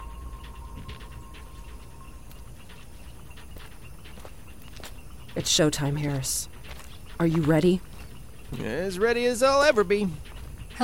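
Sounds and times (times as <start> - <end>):
steady low hum: 0.0 - 10.8
wet footsteps squelching and slapping through mud: 0.5 - 10.8
speech: 5.4 - 6.5, 7.2 - 7.9, 8.5 - 10.8.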